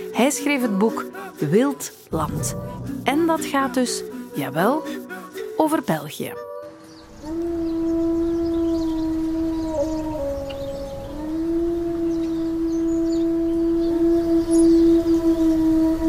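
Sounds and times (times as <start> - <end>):
speech: 0.2 - 6.5
wolf howling: 7.1 - 16.0.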